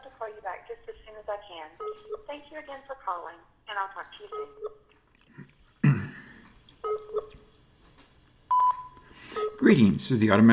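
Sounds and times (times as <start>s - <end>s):
speech: 0.2s - 7.5s, 9.3s - 10.5s
electronic answering machine beeps: 6.8s - 7.3s, 8.5s - 9.6s.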